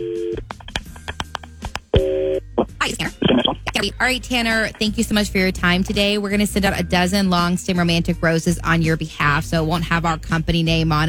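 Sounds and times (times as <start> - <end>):
steady dual-tone telephone dial tone: 0.0 - 3.6
speech: 3.8 - 11.0.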